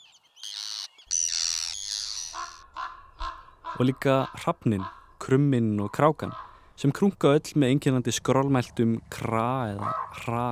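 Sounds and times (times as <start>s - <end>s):
Arctic tern calls: 0.0s - 6.8s
speech: 3.8s - 10.5s.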